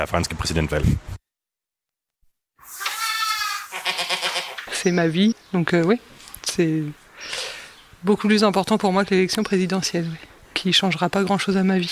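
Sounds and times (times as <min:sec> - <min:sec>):
speech: 0:00.0 - 0:01.2, 0:04.8 - 0:07.4, 0:08.0 - 0:11.9
goats bleating on a farm in the countryside of Normandy France: 0:02.7 - 0:04.7.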